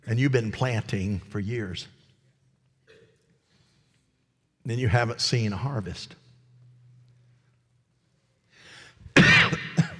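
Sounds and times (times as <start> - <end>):
speech: 0.1 - 2.0, 4.7 - 6.2
person coughing into a microphone: 9.1 - 9.9.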